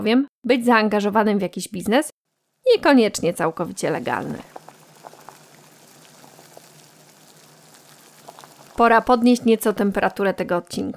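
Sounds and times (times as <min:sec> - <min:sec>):
speech: 0:00.0 - 0:04.6, 0:08.8 - 0:10.9
salted water boiling in a pot for cooking pasta: 0:02.3 - 0:10.9
bubbles popping in boiling pasta water: 0:02.7 - 0:10.2.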